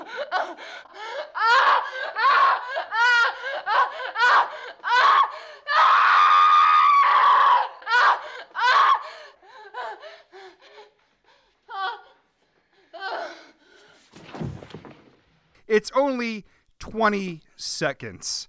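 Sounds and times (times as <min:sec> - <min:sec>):
speech: 0:00.3 - 0:03.0, 0:15.8 - 0:18.4
woman screaming and shrieking: 0:04.9 - 0:09.0.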